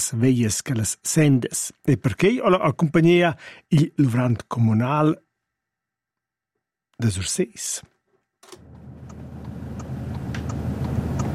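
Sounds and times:
speech: 0:00.1 - 0:05.2, 0:07.0 - 0:07.9
car engine rumbling while driving: 0:08.4 - 0:11.3
faint ticking clicks: 0:08.4 - 0:11.3.

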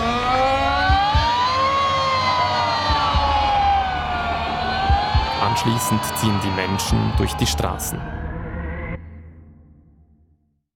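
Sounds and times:
loud alarm siren wailing: 0:00.0 - 0:09.2
speech: 0:05.6 - 0:08.2.

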